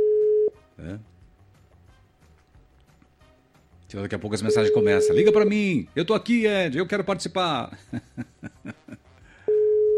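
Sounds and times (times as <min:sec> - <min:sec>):
telephone line tone during a phone call: 0:00.0 - 0:00.5, 0:04.5 - 0:05.5, 0:09.5 - 0:09.9
speech: 0:03.9 - 0:08.3
laughter: 0:07.7 - 0:09.1.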